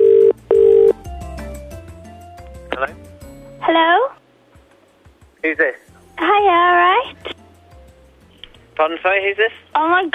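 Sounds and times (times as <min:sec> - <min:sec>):
outgoing phone call double-burst ringback tone: 0:00.0 - 0:01.0
speech: 0:05.4 - 0:07.2, 0:08.8 - 0:10.1.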